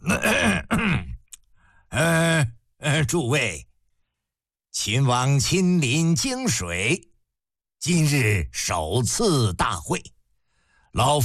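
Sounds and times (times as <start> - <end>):
voice imitating a cough with loud throaty grunting bursts: 0.0 - 1.3
speech: 3.0 - 3.7, 4.8 - 7.1, 7.8 - 10.2, 10.9 - 11.2.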